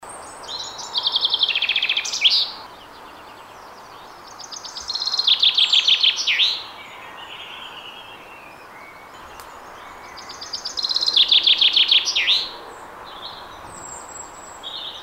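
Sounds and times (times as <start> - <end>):
Common chaffinch Fringilla coelebs singing: 0.0 - 15.0.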